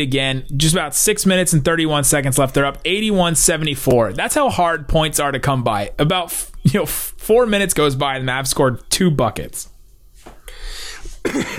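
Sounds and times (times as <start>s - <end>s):
speech: 0.0s - 9.7s, 10.6s - 11.5s
person coughing: 11.0s - 11.5s.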